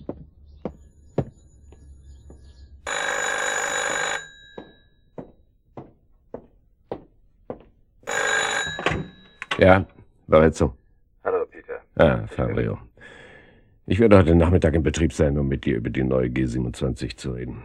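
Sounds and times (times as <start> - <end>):
telephone bell ringing: 2.8 - 5.4, 8.0 - 10.2
speech: 9.6 - 10.8, 12.0 - 13.2, 13.9 - 17.6.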